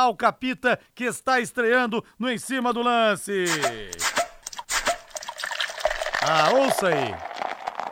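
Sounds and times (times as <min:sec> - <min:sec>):
speech: 0:00.0 - 0:04.2, 0:06.2 - 0:07.3
beer pouring into a glass: 0:05.1 - 0:07.8.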